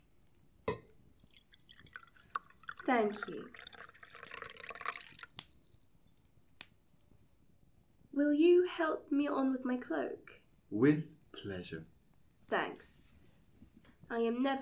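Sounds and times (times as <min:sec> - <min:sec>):
water pouring into a glass: 0:00.7 - 0:05.9
water dripping: 0:00.7 - 0:06.8
speech: 0:02.9 - 0:03.7, 0:08.2 - 0:11.9, 0:12.5 - 0:13.1, 0:14.1 - 0:14.6.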